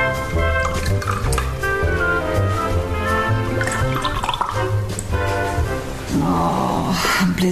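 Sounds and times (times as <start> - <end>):
low tones: 0.0 - 7.5
wine pouring into a glass: 0.2 - 6.1.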